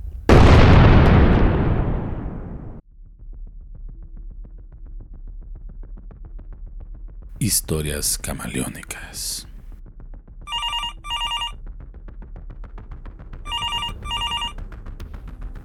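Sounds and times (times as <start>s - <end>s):
explosion with rumbling roar of debris: 0.3s - 2.8s
speech: 7.4s - 9.5s
telephone with electronic trilling rings: 10.5s - 11.6s, 13.5s - 14.6s.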